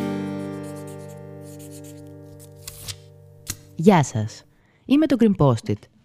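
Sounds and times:
pen scratching as it writes on small paper notes: 0.4s - 3.0s
speech: 3.8s - 5.9s.

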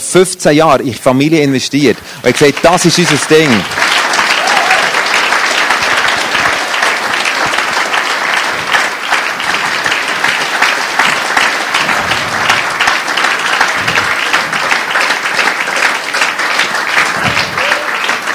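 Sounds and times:
speech: 0.1s - 3.8s
large audience applauding: 2.3s - 18.3s.

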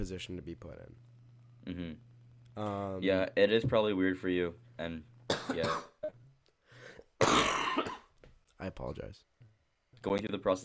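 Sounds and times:
speech: 0.0s - 6.2s, 8.6s - 9.3s, 10.0s - 10.6s
loud harsh cough burst: 5.3s - 6.2s, 7.2s - 8.1s
quiet throat-clearing rasp: 5.3s - 6.2s.

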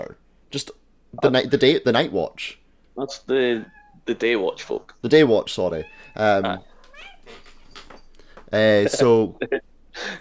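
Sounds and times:
speech: 0.0s - 6.7s, 8.5s - 10.2s
single loud cat meow: 3.6s - 4.0s, 5.8s - 7.3s.

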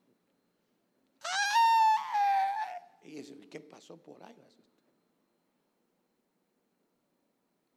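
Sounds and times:
high-pitched wailing scream of lament: 1.2s - 3.0s
speech: 3.2s - 4.8s.

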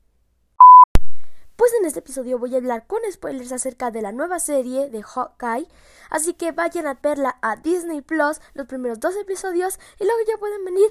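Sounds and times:
loud steady electronic alarm beep: 0.6s - 0.9s
speech: 1.7s - 10.8s.

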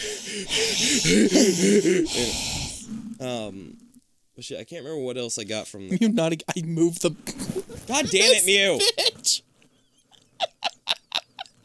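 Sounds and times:
person breathing heavily and wheezily with raspy gasps and snorting exhales: 0.0s - 3.7s
speech: 0.3s - 2.6s, 3.2s - 3.8s, 4.4s - 9.4s
laughter: 7.3s - 9.4s, 10.2s - 11.6s.

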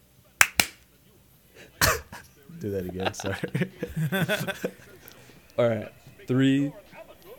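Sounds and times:
hand claps for audio sync: 0.4s - 0.8s
laughter: 1.6s - 7.3s
speech: 2.6s - 4.9s, 5.6s - 6.9s.

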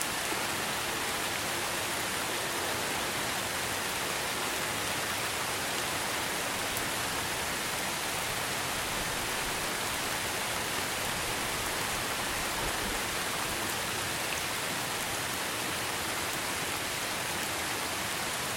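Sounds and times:
steady dense rain falling through a forest: 0.0s - 18.5s.

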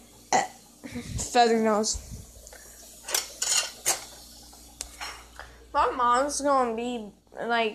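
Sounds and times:
faint steady hum: 0.0s - 7.7s
speech: 0.4s - 2.2s, 5.8s - 7.7s
dishes and cutlery clattering while being washed: 3.1s - 4.2s.

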